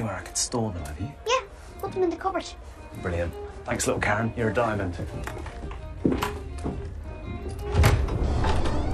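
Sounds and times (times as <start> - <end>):
speech: 0.1 - 6.8
door being pulled open: 5.2 - 8.9.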